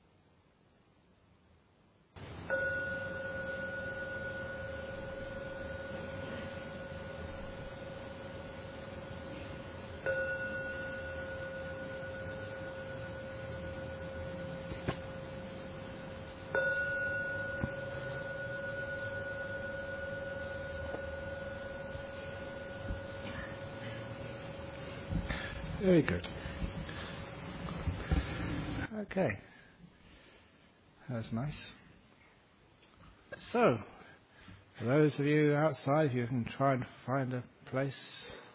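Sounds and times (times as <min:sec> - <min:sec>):
meditation gong ringing: 0:02.2 - 0:27.7
speech: 0:25.8 - 0:26.4, 0:29.0 - 0:29.4, 0:31.2 - 0:31.8, 0:33.5 - 0:33.9, 0:34.8 - 0:38.2.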